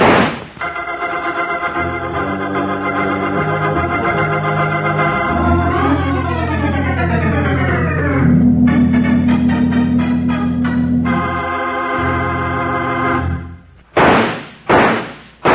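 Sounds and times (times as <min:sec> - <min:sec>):
gunshots: 0:00.0 - 0:00.6, 0:14.0 - 0:15.5
sustained music: 0:00.6 - 0:13.7.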